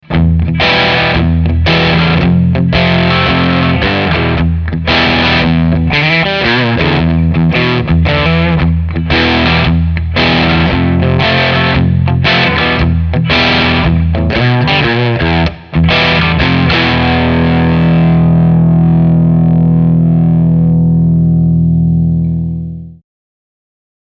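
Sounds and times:
amplifier drive channel at maximum gain: 0:00.0 - 0:23.0.

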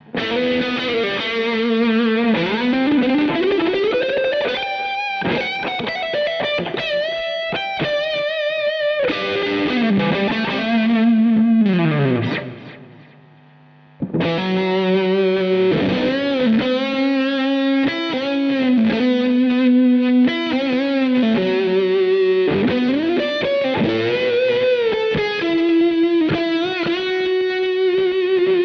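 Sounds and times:
guitar through Amber Overdrive pedal: 0:00.0 - 0:28.6.

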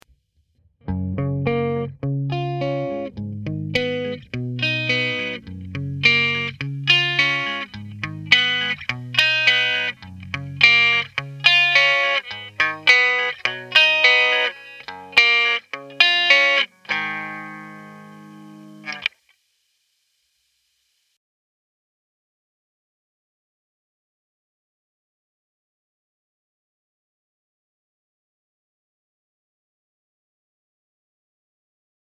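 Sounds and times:
electric guitar picking with custom EQ: 0:00.9 - 0:19.1.

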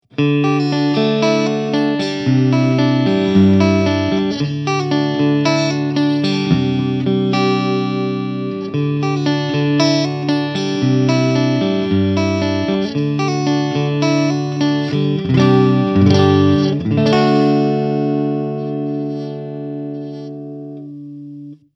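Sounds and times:
Rickenbacker 350V63 electric guitar on clean neck and middle pickup: 0:00.0 - 0:21.7.

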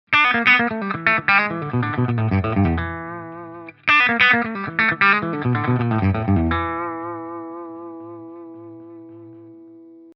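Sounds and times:
clean boosted guitar with neutral tone and slight sparkle: 0:00.1 - 0:10.1.

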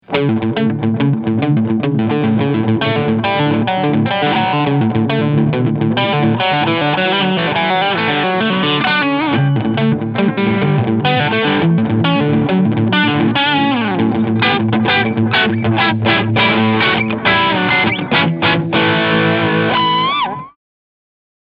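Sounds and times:
distorted guitar through distortion echo pedal: 0:00.0 - 0:20.6.

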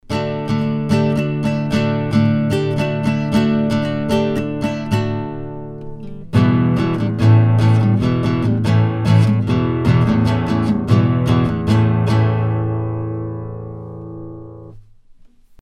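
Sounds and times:
guitar recorded with Sontronics STC 2 cardioid microphone set flat: 0:00.0 - 0:15.6.

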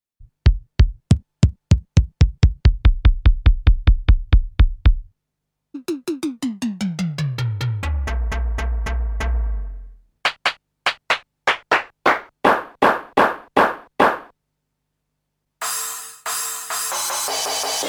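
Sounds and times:
detuned drum machine: 0:00.2 - 0:05.1, 0:05.8 - 0:14.3.

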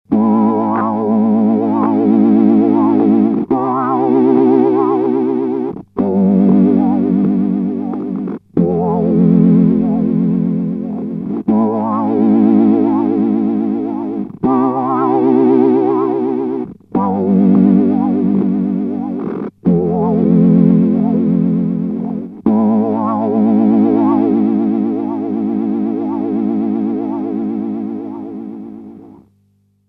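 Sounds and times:
electric guitar through effects pedal with another guitar preset: 0:00.1 - 0:29.4.

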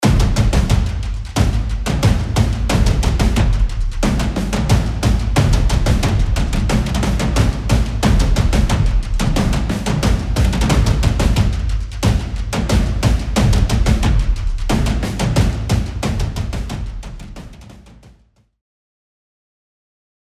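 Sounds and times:
tight music loop in four four time: 0:00.0 - 0:17.6.

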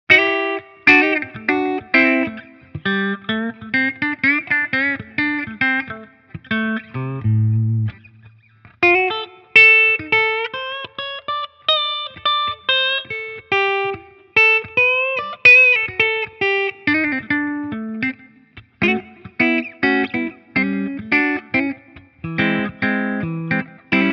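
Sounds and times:
Epiphone Firebird electric guitar with clean tone on middle pickup: 0:00.1 - 0:24.1.

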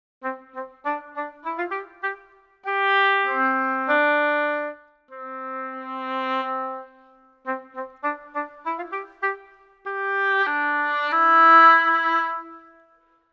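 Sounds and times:
symphonic woodwinds oboe playing: 0:00.2 - 0:13.0.

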